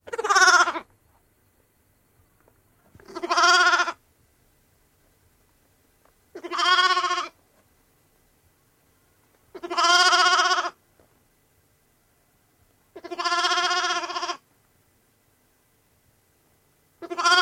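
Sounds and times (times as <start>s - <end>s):
lamb sounds: 0.0s - 0.9s, 2.9s - 4.0s, 6.3s - 7.4s, 9.5s - 10.8s, 12.9s - 14.4s, 17.0s - 17.3s.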